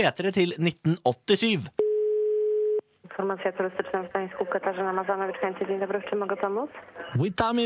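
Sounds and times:
speech: 0.0s - 1.8s, 3.1s - 7.6s
single-pitched telephone ringing tone during an outgoing call: 1.8s - 2.8s.

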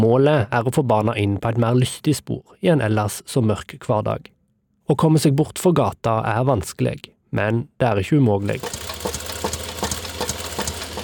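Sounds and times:
speech: 0.0s - 9.6s
motorized sewing machine running with pedal pressed: 8.4s - 11.0s.

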